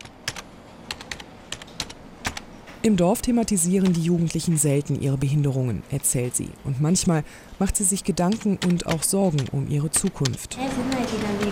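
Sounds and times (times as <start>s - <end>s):
computer keyboard typing numbers into a spreadsheet: 0.0s - 4.6s, 7.8s - 11.4s
speech: 2.8s - 11.4s.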